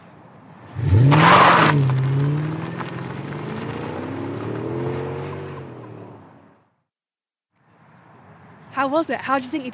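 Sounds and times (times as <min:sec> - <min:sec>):
car accelerating hard with engine and tire noise: 0:00.6 - 0:06.8
speech: 0:08.9 - 0:09.7.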